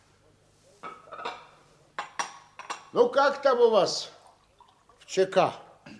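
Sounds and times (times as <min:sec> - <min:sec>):
china cups and dishes clinking: 0:00.8 - 0:02.9
speech: 0:02.9 - 0:04.2, 0:05.1 - 0:05.6
tea pouring from a teapot: 0:03.9 - 0:05.4.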